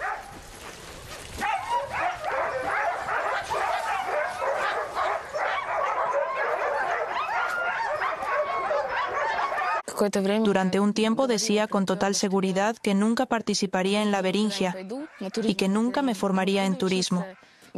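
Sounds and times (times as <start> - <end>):
large pack of sled dogs barking and yipping: 0.0 - 9.9, 14.8 - 15.8
speech: 10.0 - 17.4.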